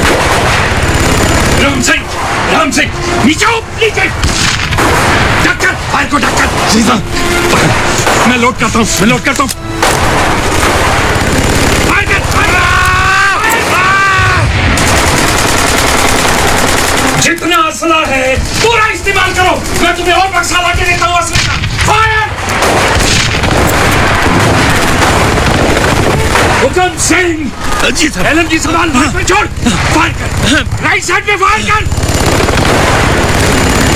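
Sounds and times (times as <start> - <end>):
deep artillery blasts: 0.0 - 3.3, 4.1 - 8.8, 9.8 - 12.7, 13.4 - 17.3, 18.4 - 27.9, 31.8 - 33.9
heavy gunfire from soldiers in rapid bursts: 0.0 - 8.9, 9.8 - 33.9
man talking: 1.6 - 4.2, 5.4 - 9.6, 11.9 - 13.9, 17.2 - 22.4, 26.5 - 31.9.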